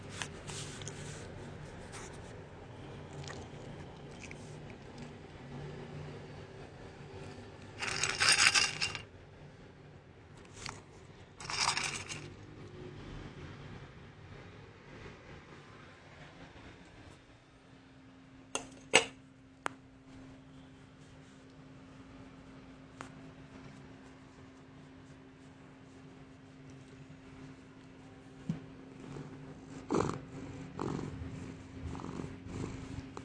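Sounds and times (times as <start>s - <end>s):
faint steady hum: 0.0s - 33.2s
cat purring after a meal: 28.8s - 33.2s.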